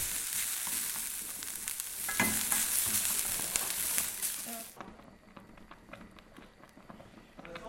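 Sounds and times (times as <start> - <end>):
food sizzling in butter in a hot pan: 0.0 - 4.8
soft kitchen clatter: 0.1 - 4.6.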